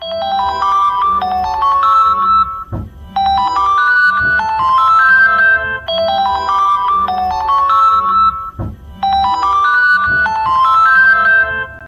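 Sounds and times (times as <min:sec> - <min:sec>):
original OPPO Find X7 Ultra phone ringtone: 0:00.0 - 0:11.8.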